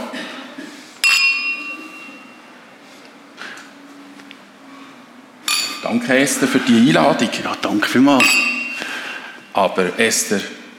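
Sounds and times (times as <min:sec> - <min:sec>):
glasses clinking in a toast: 0:01.0 - 0:02.5, 0:05.5 - 0:06.0, 0:08.1 - 0:09.6
speech: 0:05.9 - 0:08.6, 0:09.6 - 0:10.6.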